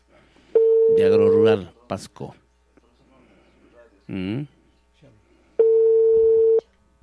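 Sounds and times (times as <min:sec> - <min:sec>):
telephone ringback tone on an unanswered call: 0:00.6 - 0:01.1, 0:05.6 - 0:06.6
speech: 0:01.0 - 0:02.4, 0:04.1 - 0:05.2.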